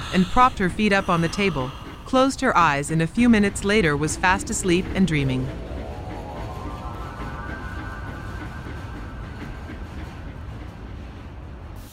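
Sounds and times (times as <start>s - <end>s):
faint steam train hissing: 0.0s - 4.8s
steam train rumbling: 0.0s - 11.9s
speech: 0.1s - 5.6s.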